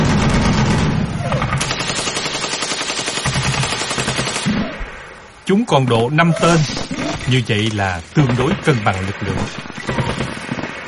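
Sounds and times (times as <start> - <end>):
light machine gun firing in a firefight: 0.0 - 4.6, 9.4 - 10.8
speech: 5.5 - 9.7.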